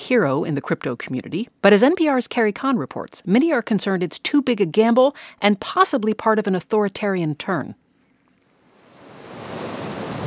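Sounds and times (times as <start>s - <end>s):
speech: 0.1s - 7.8s
ocean waves crashing on a Pacific beach in El Salvador: 8.8s - 10.2s.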